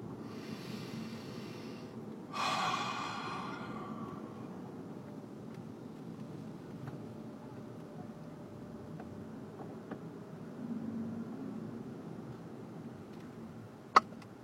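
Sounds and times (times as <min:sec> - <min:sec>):
low rumble of road and engine noise inside a vehicle: 0:00.0 - 0:14.4
deep breathy exhale: 0:00.2 - 0:04.8.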